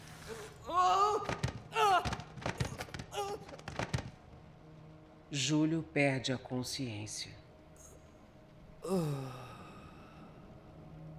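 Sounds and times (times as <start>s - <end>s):
body tumbling down stairs: 1.2s - 4.2s
speech: 5.3s - 7.4s, 8.9s - 9.5s.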